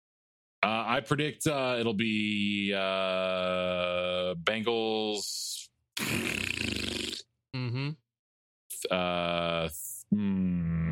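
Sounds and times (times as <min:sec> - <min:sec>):
speech: 0:00.9 - 0:07.0, 0:08.9 - 0:10.8
person imitating fart noises with mouth: 0:06.0 - 0:08.0, 0:10.3 - 0:10.9.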